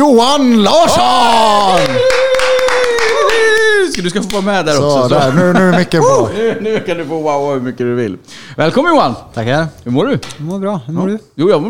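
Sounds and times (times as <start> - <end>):
speech: 0.0 - 2.2, 4.0 - 11.6
loud crowd applause: 1.2 - 4.6
laughter: 1.8 - 7.2.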